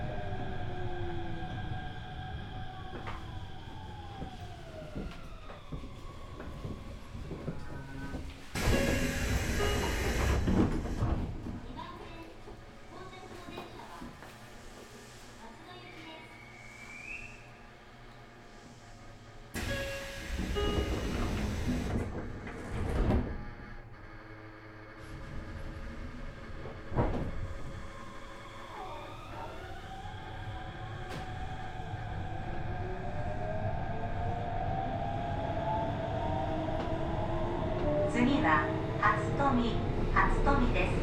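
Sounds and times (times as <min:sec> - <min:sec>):
steady hum of train and station noise: 0:00.0 - 0:41.0
train doors sliding open with a pneumatic whoosh at a station: 0:06.7 - 0:11.8, 0:19.5 - 0:23.8, 0:25.0 - 0:29.5, 0:30.8 - 0:32.1.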